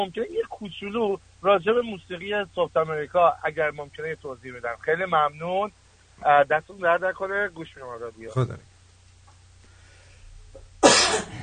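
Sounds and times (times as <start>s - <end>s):
speech: 0.0s - 8.7s
low steady hum: 0.0s - 11.4s
cough in the background: 10.8s - 11.4s.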